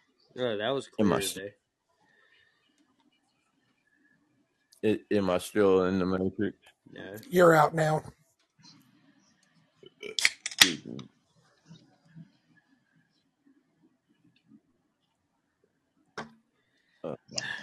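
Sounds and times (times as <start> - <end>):
speech: 0.4 - 1.6, 4.8 - 8.8, 10.0 - 11.1
soda can cracking open with fizzy hiss: 10.2 - 10.7.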